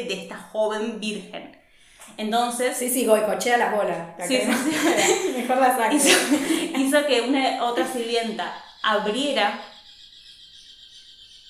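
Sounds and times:
speech: 0.0 - 9.7
laughter: 4.3 - 7.0, 7.6 - 8.3
birds chirping: 4.3 - 11.4.

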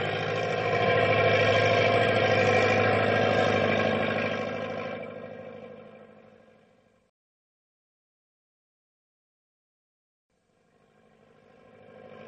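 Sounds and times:
heavy truck engine laboring through snow drifts: 0.0 - 6.2.

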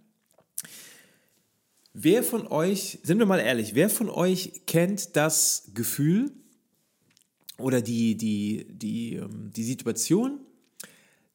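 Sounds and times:
speech: 2.0 - 6.4, 7.6 - 10.5
soft mouth clicks: 10.6 - 11.0.

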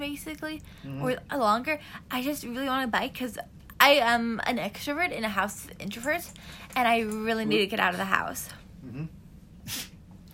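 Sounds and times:
speech: 0.0 - 9.9
dog sneezing: 9.6 - 10.0.

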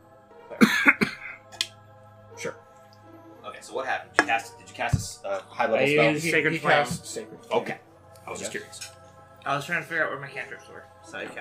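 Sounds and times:
person clearing throat: 0.6 - 1.4
speech: 3.7 - 11.3.

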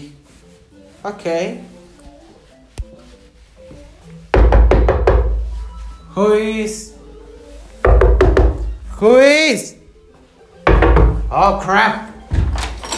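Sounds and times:
speech: 1.0 - 1.7, 6.2 - 6.9, 9.0 - 9.8, 11.3 - 12.1
loud knocking on a door: 4.3 - 5.5, 7.8 - 8.7, 10.7 - 11.3.

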